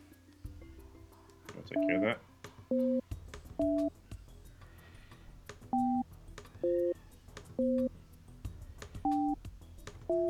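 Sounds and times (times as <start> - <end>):
speech: 1.6 - 4.0
short electronic telephone tones of a call being placed: 1.8 - 2.1, 2.7 - 3.0, 3.6 - 3.9, 5.8 - 6.0, 6.6 - 7.0, 7.6 - 7.9, 9.0 - 9.4.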